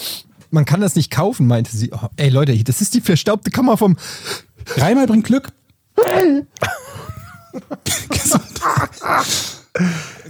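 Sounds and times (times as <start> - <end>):
speech: 0.5 - 6.8, 7.6 - 10.2
laughter: 6.6 - 9.2
person sneezing: 9.1 - 9.6.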